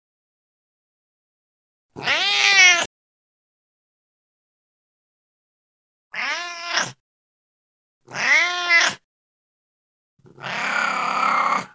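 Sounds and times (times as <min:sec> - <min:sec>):
old cat meowing in strained rising-then-falling cries: 0:02.0 - 0:02.9, 0:06.2 - 0:07.0, 0:08.1 - 0:09.0, 0:10.3 - 0:11.7.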